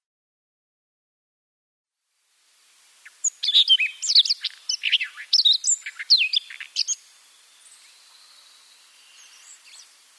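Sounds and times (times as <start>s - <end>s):
Siberian rubythroat song: 3.0s - 10.1s.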